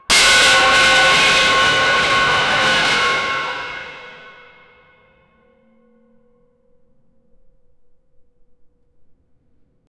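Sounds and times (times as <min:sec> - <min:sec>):
extremely loud and heavy destruction: 0:00.1 - 0:04.6.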